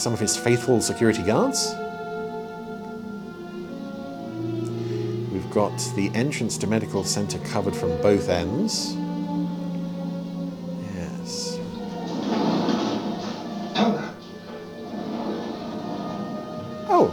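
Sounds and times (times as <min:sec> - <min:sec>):
speech: 0:00.0 - 0:02.0, 0:05.5 - 0:09.1
steady hum: 0:01.8 - 0:17.0
sliding door rumbling along its rollers: 0:03.3 - 0:09.1, 0:11.7 - 0:17.1.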